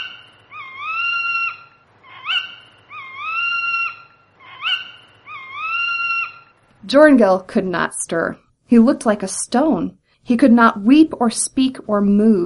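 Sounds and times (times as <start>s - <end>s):
owl screeching: 0.0s - 6.6s
speech: 6.9s - 12.4s.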